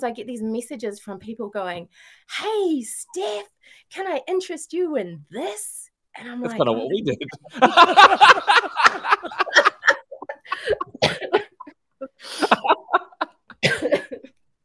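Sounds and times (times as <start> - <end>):
speech: 0.0 - 9.8
breathy laughter: 7.0 - 14.3
person coughing from a cold: 9.1 - 11.7, 12.3 - 14.3
gasps: 9.6 - 12.7.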